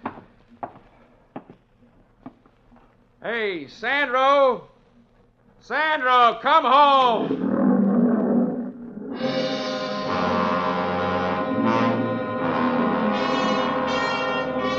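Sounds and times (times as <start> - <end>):
speech: 3.2 - 4.7, 5.6 - 7.4
lion roaring: 6.9 - 14.6.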